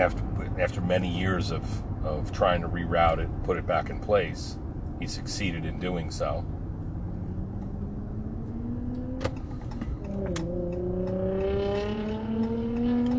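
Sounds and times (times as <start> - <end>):
speech: 0.0 - 6.6
rumbling road noise: 0.0 - 13.1
small low sports car revving: 5.7 - 13.1.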